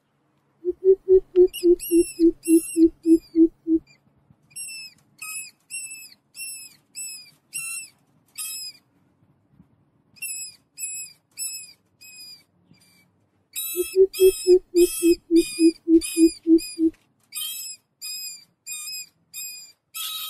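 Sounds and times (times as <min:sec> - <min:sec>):
beeping: 0:00.7 - 0:03.8, 0:13.8 - 0:16.9
mouse squeaking: 0:00.7 - 0:03.8, 0:13.6 - 0:16.9.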